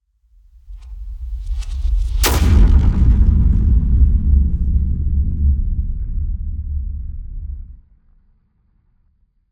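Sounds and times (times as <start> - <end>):
cinematic hit: 2.2 - 7.8.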